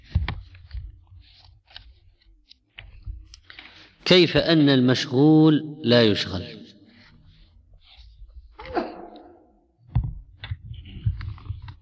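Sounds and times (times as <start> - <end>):
speech: 4.1 - 6.6
person sneezing during a lesson: 8.6 - 9.4.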